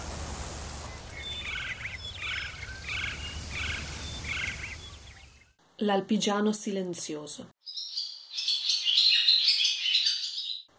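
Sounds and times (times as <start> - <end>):
shrill twittering call of a lone swallow: 0.8 - 5.5, 7.6 - 10.7
speech: 5.8 - 7.6.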